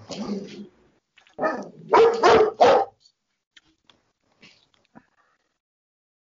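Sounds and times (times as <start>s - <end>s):
very large spoiled pet dog barking: 1.4s - 3.0s.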